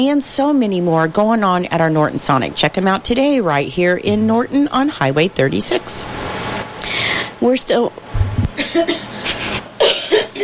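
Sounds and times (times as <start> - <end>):
speech: 0.0 - 6.3, 7.4 - 8.0, 8.6 - 9.4
person gasping: 6.8 - 7.3
person coughing after swallowing wrong: 8.6 - 10.4.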